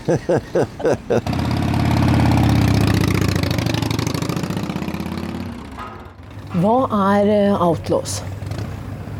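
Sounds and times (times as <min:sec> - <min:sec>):
laughter: 0:00.0 - 0:01.3
speech: 0:00.1 - 0:01.6, 0:06.5 - 0:08.3
motorcycle engine revving and idling: 0:01.2 - 0:06.6, 0:08.2 - 0:09.1.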